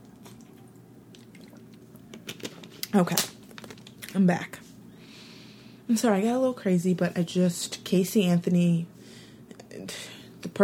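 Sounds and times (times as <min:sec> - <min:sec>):
person sipping water: 0:00.0 - 0:02.2
speech: 0:02.9 - 0:03.4, 0:04.2 - 0:04.6, 0:05.9 - 0:09.0.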